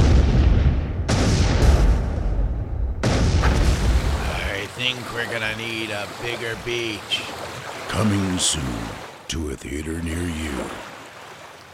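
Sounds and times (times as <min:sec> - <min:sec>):
explosion effects with deep rumbling booms: 0:00.0 - 0:04.5
speech: 0:04.9 - 0:10.9.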